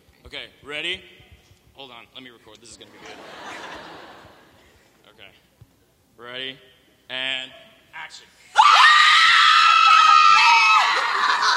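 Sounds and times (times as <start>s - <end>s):
speech: 0.3s - 1.2s, 1.8s - 4.0s, 6.2s - 8.8s
laughter: 2.8s - 4.8s, 10.9s - 11.5s
several people screaming together during a live show: 8.6s - 11.5s.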